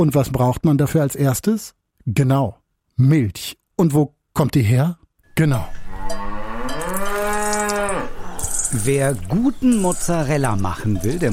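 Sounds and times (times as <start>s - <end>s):
speech: 0.0s - 5.8s, 8.7s - 11.3s
dairy cow mooing on a mountain pasture in Abruzzo, central Italy: 5.8s - 8.9s.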